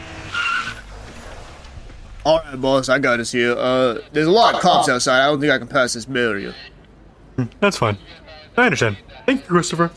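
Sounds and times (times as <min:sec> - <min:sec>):
car tires squealing while skidding through traffic: 0:00.0 - 0:00.9
speech: 0:02.2 - 0:06.7, 0:07.4 - 0:09.9.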